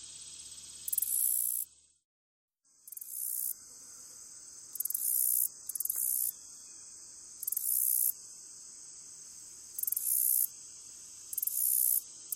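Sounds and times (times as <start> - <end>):
faint continuous high buzz: 0.0 - 2.0, 2.7 - 12.3
black-legged meadow katydid buzzing song: 0.3 - 1.7, 4.7 - 6.4, 7.4 - 8.2, 9.8 - 10.5, 11.3 - 12.3.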